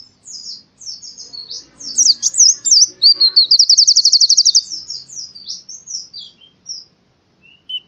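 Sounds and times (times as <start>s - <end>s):
canary singing a warbled phrase and high trill: 0.0s - 7.8s.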